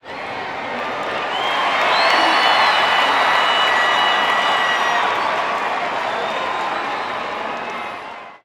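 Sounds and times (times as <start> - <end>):
baseball crowd cheering: 0.0 - 8.4.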